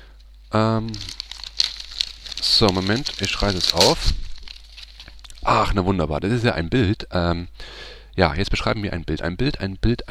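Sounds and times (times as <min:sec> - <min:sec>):
wrapping paper crinkling as a large gift package is unwrapped: 0:00.1 - 0:05.8
speech: 0:00.5 - 0:01.1, 0:02.6 - 0:04.2, 0:05.5 - 0:10.0.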